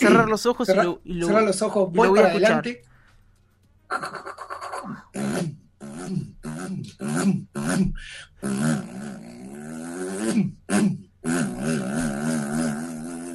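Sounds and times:
speech: 0.0 - 2.9, 3.9 - 9.4, 10.2 - 12.4
voice imitating rear-mounted engine of a Fiat 600 car: 5.2 - 13.3.

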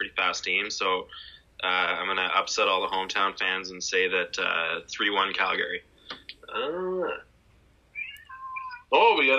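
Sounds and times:
speech: 0.2 - 5.9, 6.5 - 7.3, 8.9 - 9.3
cat meowing: 8.0 - 8.9.

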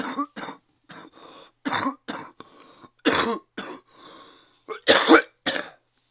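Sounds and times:
person coughing after smoking: 0.0 - 2.4, 3.0 - 3.9, 4.7 - 5.8
wheezy breaths: 1.0 - 1.6, 2.4 - 3.0, 3.8 - 4.7.

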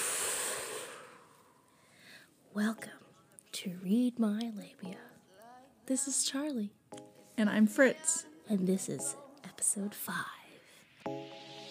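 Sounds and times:
person exhaling: 0.0 - 2.3
speech: 2.6 - 3.0, 3.6 - 5.1, 5.9 - 6.8, 7.4 - 10.4.

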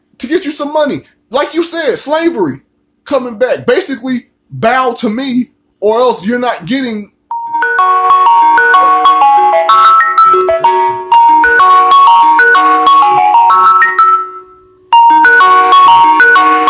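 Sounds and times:
speech: 0.3 - 7.1
loud bright melodic phone ringtone: 7.3 - 16.6.

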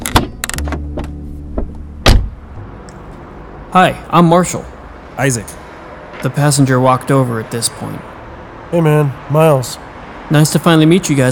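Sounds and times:
car door clunking open with rattling clicks: 0.0 - 2.4
low car engine hum: 0.0 - 3.7
speech: 3.7 - 5.6, 6.2 - 8.1, 8.7 - 11.3.

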